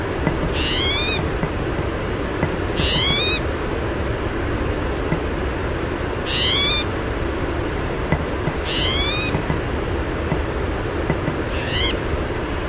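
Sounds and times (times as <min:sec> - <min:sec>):
continuous low background rumble: 0:00.0 - 0:12.6
spotted towhee mewing: 0:00.3 - 0:01.6, 0:02.4 - 0:03.5, 0:06.2 - 0:06.9, 0:08.2 - 0:09.7, 0:11.1 - 0:12.1.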